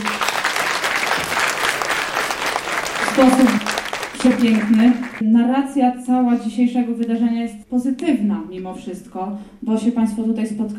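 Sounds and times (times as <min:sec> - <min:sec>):
audience applause after a film screening: 0:00.0 - 0:05.2
speech: 0:03.2 - 0:10.7.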